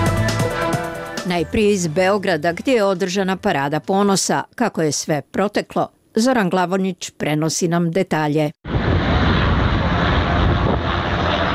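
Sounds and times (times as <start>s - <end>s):
speech: 1.3s - 8.7s
police helicopter flying overhead with engine and rotor noise: 8.7s - 11.5s.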